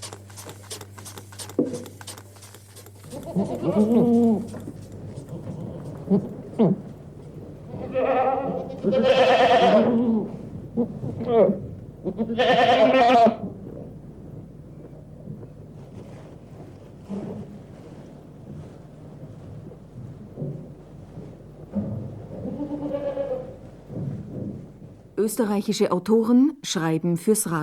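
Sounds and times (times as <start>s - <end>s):
Alpine goats bleating outdoors: 3.0s - 6.8s, 7.7s - 10.3s, 11.3s - 13.4s, 22.4s - 23.6s
low wind rumble: 3.2s - 26.5s
speech: 3.4s - 4.7s, 6.1s - 6.8s, 12.1s - 12.7s, 25.4s - 27.6s.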